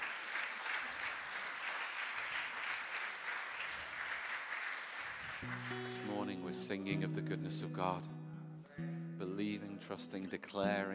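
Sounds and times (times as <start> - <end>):
crowd applauding at a church service: 0.0 - 6.4
speech: 5.4 - 8.1, 8.8 - 10.9.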